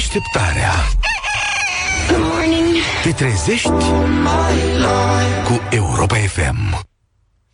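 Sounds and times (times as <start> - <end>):
speech: 0.1 - 1.1, 2.0 - 6.9
rooster crowing: 1.0 - 2.5.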